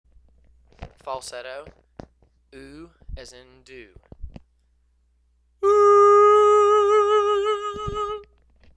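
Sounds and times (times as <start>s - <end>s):
person singing falsetto oo: 5.6s - 8.3s.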